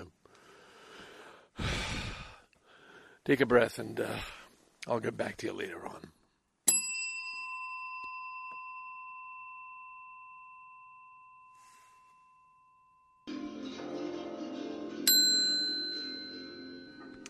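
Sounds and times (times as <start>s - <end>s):
noise: 0.0s - 17.2s
speech: 3.2s - 6.2s
bell ringing in a basement bar: 6.7s - 13.3s, 15.0s - 17.2s.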